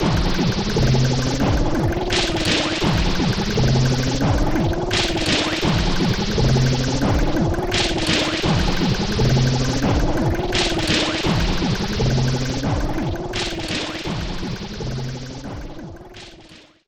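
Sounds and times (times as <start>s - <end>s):
factory noise: 0.0s - 15.6s.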